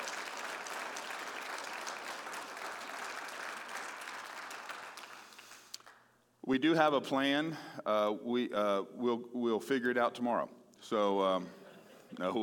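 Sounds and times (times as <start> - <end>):
audience applauding: 0.0 - 6.0
speech: 6.5 - 12.4.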